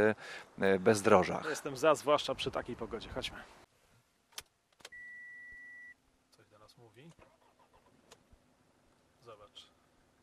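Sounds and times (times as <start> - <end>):
speech: 0.0 - 3.7
sharp clicks: 4.3 - 5.0
2.4 diesel engine starting and idling: 7.2 - 8.0.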